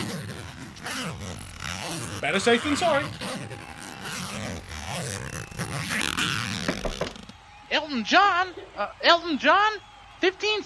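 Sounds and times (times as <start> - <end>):
clothing zipper being zipped: 0.0 - 7.4
speech: 2.2 - 3.2, 7.8 - 10.6.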